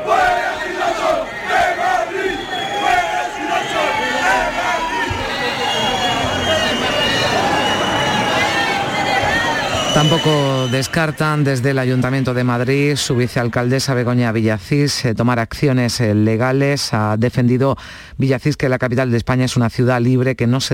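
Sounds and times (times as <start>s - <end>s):
large crowd at an LGTBI street march chanting slogans in unison: 0.0s - 10.2s
outdoor hubbub in Chueca, Madrid: 0.0s - 14.3s
speech: 10.0s - 20.7s.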